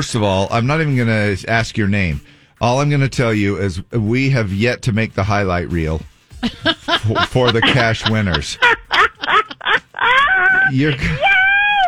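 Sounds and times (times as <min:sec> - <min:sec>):
speech: 0:00.0 - 0:08.7, 0:10.7 - 0:11.3
laughter: 0:06.4 - 0:11.8
excited radio call-in caller screaming over a phone line after winning cash prize: 0:10.1 - 0:11.8.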